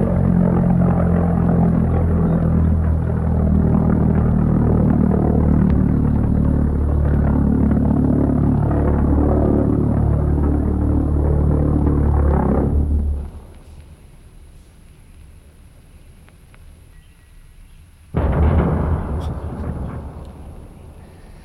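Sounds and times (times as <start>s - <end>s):
heavy airplane crash rumbling: 0.0s - 13.4s, 18.2s - 21.4s
aircraft engine droning during takeoff: 0.0s - 14.8s, 18.2s - 21.4s.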